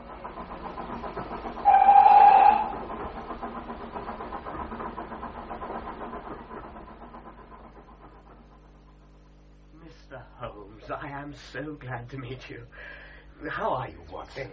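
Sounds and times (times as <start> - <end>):
steam train rumbling along: 0.0 - 10.7
steam train whistle blast: 1.6 - 2.8
speech: 11.3 - 14.5.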